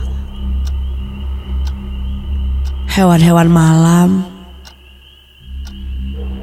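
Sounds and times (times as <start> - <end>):
clock ticking: 0.0 - 6.4
low constant hum: 0.0 - 6.4
speech: 3.0 - 4.3.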